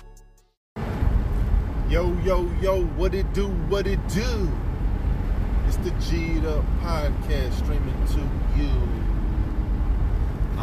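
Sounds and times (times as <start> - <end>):
low road rumble in the cabin of a moving car: 0.8 - 10.6
speech: 1.9 - 4.7, 5.7 - 9.1.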